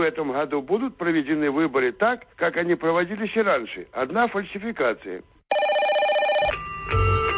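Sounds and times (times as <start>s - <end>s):
speech: 0.0s - 5.6s, 6.9s - 7.1s
telephone ringing with an electronic trill: 5.5s - 7.2s.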